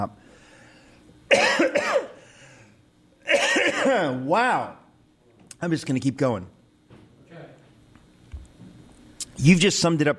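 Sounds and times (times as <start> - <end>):
speech: 0.0 - 0.2, 3.8 - 4.8, 5.6 - 6.5, 9.4 - 10.1
person coughing: 1.3 - 2.2, 3.2 - 4.2.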